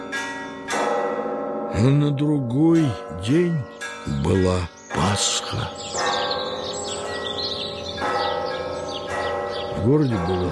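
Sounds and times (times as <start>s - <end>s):
church bells ringing: 0.0s - 10.5s
speech: 1.8s - 6.2s, 9.8s - 10.5s.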